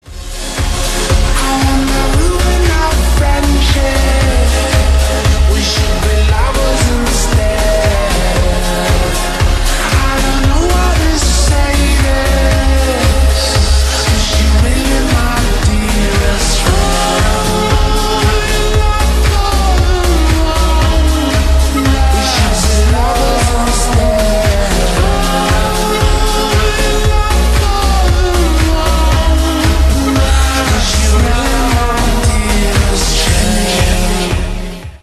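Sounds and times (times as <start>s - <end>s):
slowed reverb music: 0.0s - 35.0s.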